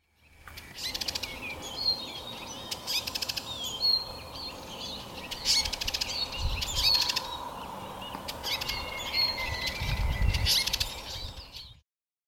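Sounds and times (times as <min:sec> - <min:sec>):
house sparrow chirping: 0:00.0 - 0:11.8.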